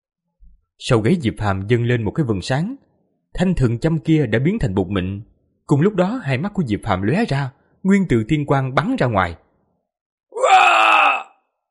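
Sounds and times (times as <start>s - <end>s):
speech: 0.8s - 9.4s
agonized scream from an ambusher struck down in a fantasy battle: 10.3s - 11.5s.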